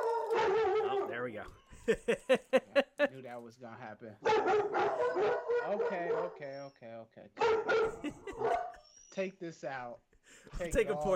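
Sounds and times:
dog barking and yowling outside: 0:00.0 - 0:01.3, 0:04.2 - 0:06.7, 0:07.4 - 0:08.8
speech: 0:01.2 - 0:11.1
laughter: 0:01.7 - 0:03.4, 0:07.7 - 0:08.8.

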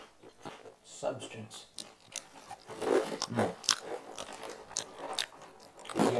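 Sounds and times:
speech: 0:01.0 - 0:01.7, 0:02.7 - 0:03.6
crispy rice-and-lentil snack being chewed: 0:01.7 - 0:06.1.

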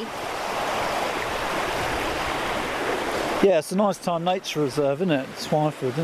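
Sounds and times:
fast-flowing river water rushing: 0:00.0 - 0:06.0
speech: 0:03.4 - 0:06.0.

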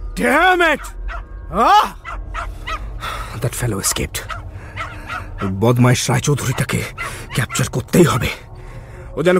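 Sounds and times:
speech: 0:00.2 - 0:02.5, 0:03.4 - 0:04.4, 0:05.4 - 0:08.5, 0:09.2 - 0:09.3
dog barking upstairs: 0:02.0 - 0:02.9, 0:04.2 - 0:05.5, 0:06.5 - 0:07.8.

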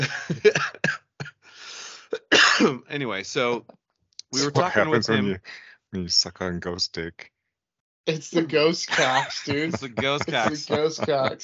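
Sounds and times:
harsh coughing: 0:00.0 - 0:03.6, 0:04.4 - 0:05.6, 0:08.9 - 0:11.4
laughter: 0:00.0 - 0:03.6, 0:04.4 - 0:07.1, 0:08.4 - 0:11.4
long breathy raspy exhale: 0:01.4 - 0:02.1
speech: 0:03.0 - 0:07.3, 0:08.0 - 0:11.4.

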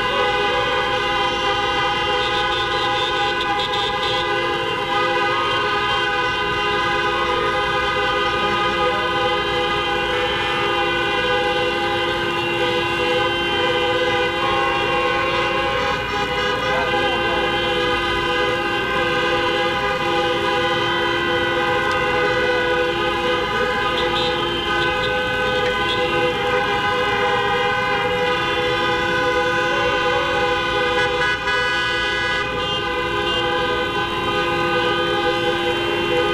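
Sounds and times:
car horns honking: 0:00.0 - 0:36.3.

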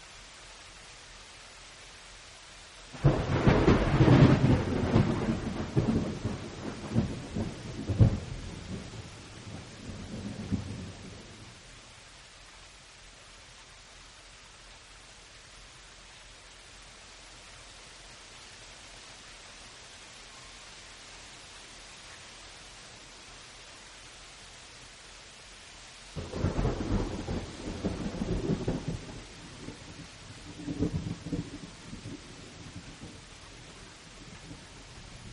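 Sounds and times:
late-night downpour hissing: 0:00.0 - 0:35.3
rumbling thunder: 0:03.0 - 0:11.4, 0:26.2 - 0:33.3.

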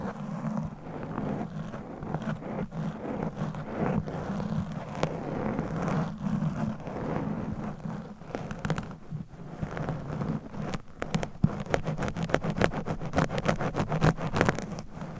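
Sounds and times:
claw-like scratching rubbing against a microphone: 0:00.0 - 0:15.1.

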